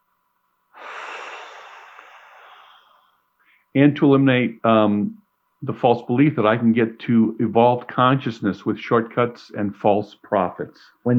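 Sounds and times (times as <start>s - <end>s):
person breathing in: 0.8s - 3.7s
speech: 3.7s - 11.1s.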